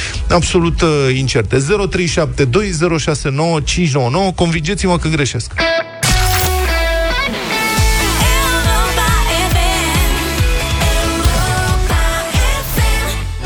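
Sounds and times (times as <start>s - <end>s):
speech: 0.3s - 5.8s
bright upbeat pop rock song: 6.0s - 13.4s.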